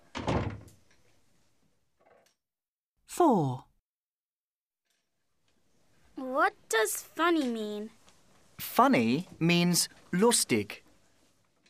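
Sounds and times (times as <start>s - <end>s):
door closing with a thud: 0.0s - 0.8s
speech: 3.2s - 3.7s, 6.3s - 8.0s, 8.6s - 10.8s.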